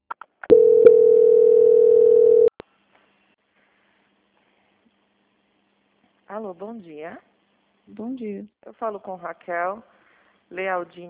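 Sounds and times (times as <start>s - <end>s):
telephone line tone during bank call transfer: 0.5s - 2.5s
speech: 6.4s - 7.3s, 7.9s - 11.0s.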